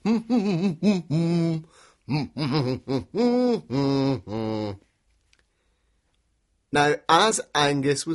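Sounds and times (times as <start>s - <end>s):
person humming a short simple tune: 0.0s - 4.8s
speech: 0.0s - 4.8s, 6.7s - 8.1s.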